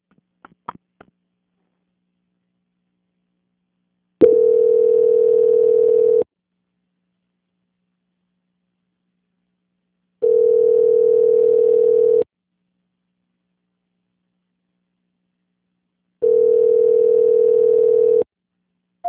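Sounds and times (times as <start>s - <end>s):
telephone ringback tones during a call transfer: 4.2s - 6.2s, 10.2s - 12.2s, 16.2s - 18.3s.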